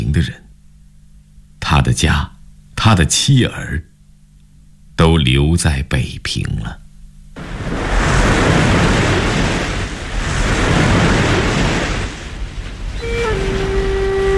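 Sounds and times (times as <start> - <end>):
speech: 0.1 - 0.4, 1.7 - 3.9, 5.0 - 6.8
ocean waves surging on the open sea south of Hong Kong: 7.4 - 14.3
steady sustained horn-like tone over the sea: 12.8 - 14.3.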